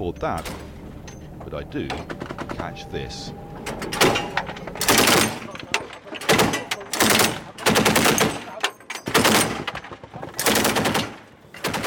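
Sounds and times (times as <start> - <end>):
speech: 0.0 - 0.6, 1.5 - 4.2
rumbling background: 0.0 - 11.8
machine gun fire from an armoured personnel carrier: 4.0 - 5.6, 6.2 - 11.8.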